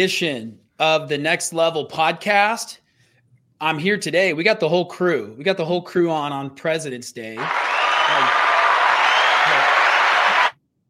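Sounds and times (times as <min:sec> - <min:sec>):
speech: 0:00.0 - 0:02.8, 0:03.6 - 0:08.5
small group clapping: 0:07.4 - 0:10.5.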